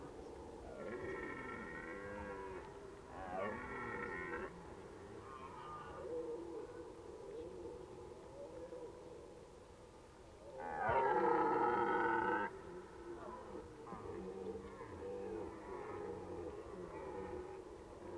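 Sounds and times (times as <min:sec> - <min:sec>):
red deer roaring in Valsolda: 0:00.7 - 0:06.0, 0:10.6 - 0:18.1.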